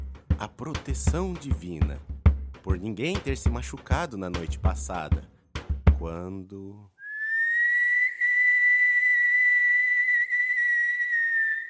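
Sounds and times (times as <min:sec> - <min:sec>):
speech: 0:00.4 - 0:05.3, 0:06.0 - 0:06.9
sustained high-pitched echoing whistle: 0:07.0 - 0:11.6.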